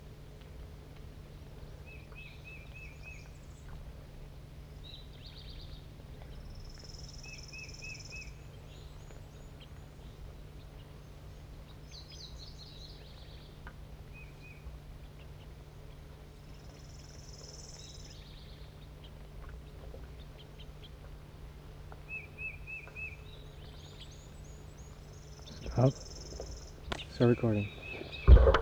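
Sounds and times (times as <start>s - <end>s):
steady low hum: 0.0s - 28.6s
juvenile bird begging calls: 25.5s - 28.6s
speech: 25.8s - 26.1s, 27.2s - 27.8s.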